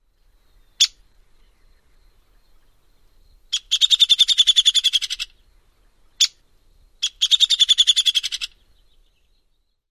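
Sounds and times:
peek and sputter calls: 0:03.5 - 0:05.3, 0:07.0 - 0:08.6.

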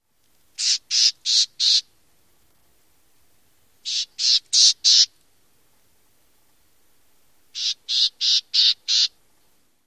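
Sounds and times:
Black-tailed Gnatcatcher calls: 0:00.6 - 0:01.9, 0:03.8 - 0:05.2, 0:07.5 - 0:09.2.

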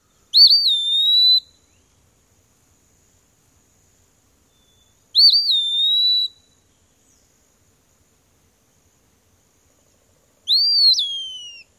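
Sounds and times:
Eastern Wood-Pewee normal song: 0:00.0 - 0:02.1, 0:04.4 - 0:07.6, 0:09.7 - 0:11.7.

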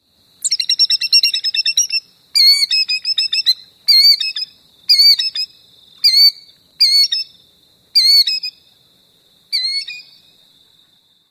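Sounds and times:
bird outburst and calls: 0:00.4 - 0:07.4, 0:08.0 - 0:08.6, 0:09.5 - 0:10.4.

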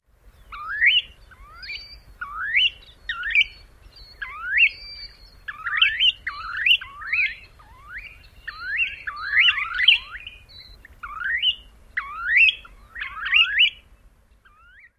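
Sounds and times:
snowy plover koorwee calls: 0:00.5 - 0:14.9.

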